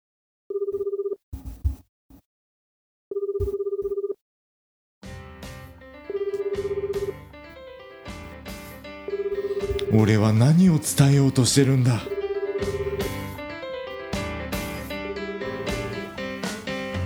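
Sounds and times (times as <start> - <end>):
telephone ringback tone of an outgoing call: 0.5 - 1.2, 3.1 - 4.2, 6.1 - 7.3, 9.0 - 13.4
music: 5.0 - 17.0
speech: 10.0 - 12.2.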